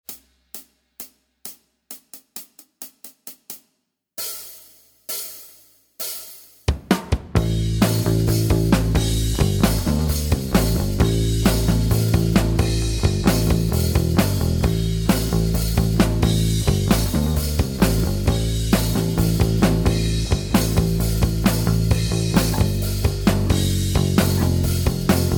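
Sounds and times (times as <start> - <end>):
rock backing music: 7.3 - 25.3.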